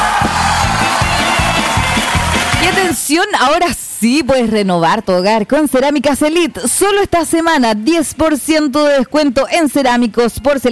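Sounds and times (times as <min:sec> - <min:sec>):
crowd applauding and cheering: 0:00.0 - 0:03.0
speech: 0:03.1 - 0:10.7.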